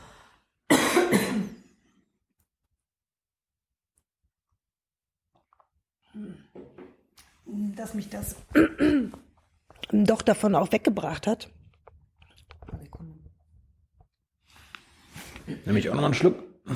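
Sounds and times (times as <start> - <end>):
speech: 7.5 - 9.2, 9.9 - 11.6, 15.6 - 16.7
harsh rasping throat clearing: 8.6 - 9.3.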